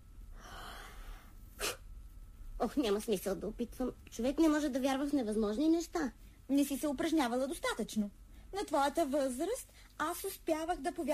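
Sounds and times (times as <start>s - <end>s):
deep breath in: 0.3s - 1.4s
speech: 2.6s - 11.1s.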